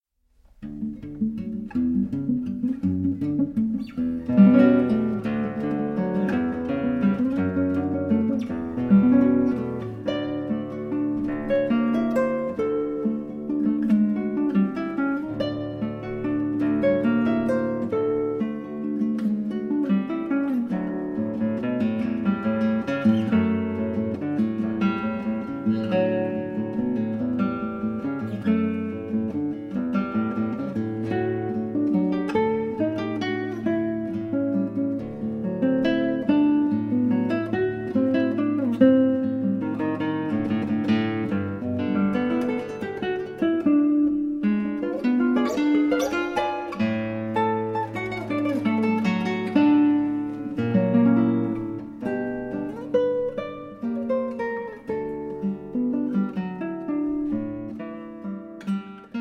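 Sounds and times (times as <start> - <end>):
guitar piece: 0.2 - 59.1.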